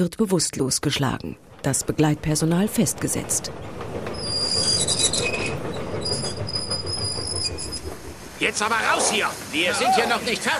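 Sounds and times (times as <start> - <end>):
speech: 0.0 - 3.9, 8.4 - 10.5
heavy low rumble of rolling train cars: 0.0 - 10.5
mail train wheels squealing while braking to a stop: 4.1 - 8.1.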